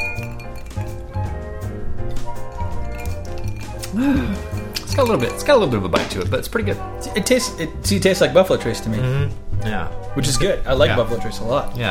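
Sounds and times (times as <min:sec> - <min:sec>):
whiskey glasses clinking in a toast: 0:00.0 - 0:01.4, 0:02.1 - 0:06.1
speech: 0:04.0 - 0:11.8.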